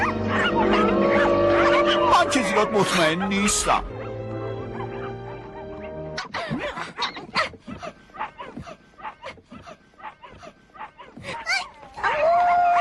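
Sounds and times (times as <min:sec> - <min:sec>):
wolf-like dog howling and whimpering out of excitement: 0:00.0 - 0:06.0, 0:10.0 - 0:12.7
speech: 0:02.3 - 0:04.0.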